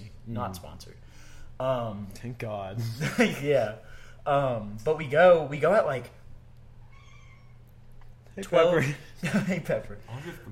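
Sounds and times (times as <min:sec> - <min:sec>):
steady low hum: 0:00.0 - 0:10.5
speech: 0:00.3 - 0:06.2, 0:08.4 - 0:10.5
cat meowing: 0:06.8 - 0:07.8
laughter: 0:09.2 - 0:10.4.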